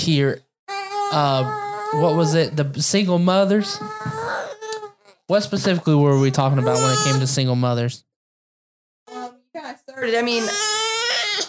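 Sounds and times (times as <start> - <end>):
speech: 0.0 - 0.4, 1.1 - 4.6, 5.3 - 8.1, 10.0 - 10.8
fussy baby crying: 0.7 - 2.6, 3.3 - 5.4, 6.0 - 7.4, 9.1 - 9.4, 10.1 - 11.4.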